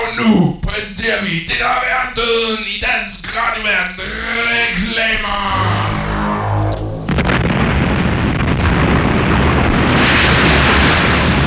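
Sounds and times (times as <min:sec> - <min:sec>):
speech: 0:00.2 - 0:05.7
brief tonal passage: 0:05.4 - 0:07.9
Harpoon missile rocket explosion: 0:05.5 - 0:11.4.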